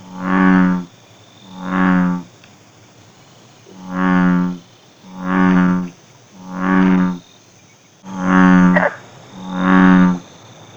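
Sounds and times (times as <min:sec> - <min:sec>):
American bullfrog croaking in low buzzy booming notes: 0:00.0 - 0:02.4, 0:03.7 - 0:07.3, 0:08.1 - 0:10.4.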